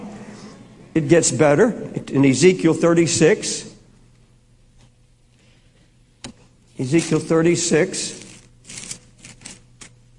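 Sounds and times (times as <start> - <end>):
low hum: 0.0 - 10.1
speech: 1.0 - 3.7, 6.8 - 8.2
Bible paper pages being turned: 6.8 - 10.0.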